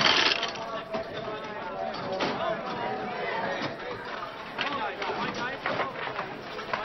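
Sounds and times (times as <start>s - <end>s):
cascade of coins clattering and jingling out of a slot machine: 0.0s - 0.6s
murmur of crowd chatter: 0.0s - 6.8s.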